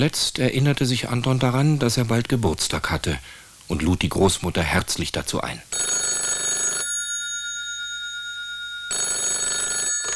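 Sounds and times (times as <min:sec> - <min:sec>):
speech: 0:00.0 - 0:05.9
telephone ringing with a bright electronic trill: 0:05.7 - 0:10.1.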